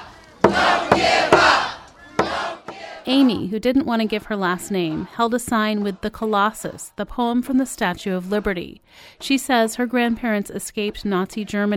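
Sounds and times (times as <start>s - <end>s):
large crowd shouting together at a rally: 0.0s - 3.5s, 4.5s - 6.4s
sharp percussive hits in a chant-like rhythm: 0.4s - 3.5s
speech: 3.1s - 11.7s.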